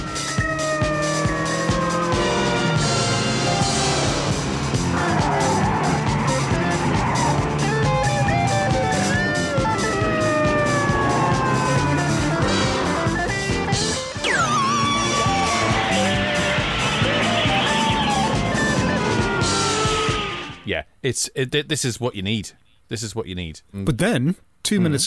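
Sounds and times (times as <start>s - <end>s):
car engines roaring in a TV car chase: 0.0s - 20.6s
dense frantic TV score: 0.0s - 20.6s
highway patrol sirens wailing: 0.0s - 20.6s
tyres screeching in a TV car chase: 1.4s - 13.1s, 14.2s - 20.6s
speech: 21.1s - 25.0s.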